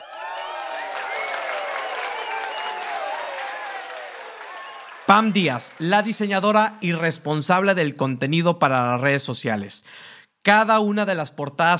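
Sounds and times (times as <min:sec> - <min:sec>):
crowd applause sound effect: 0:00.0 - 0:06.4
speech: 0:05.1 - 0:11.7.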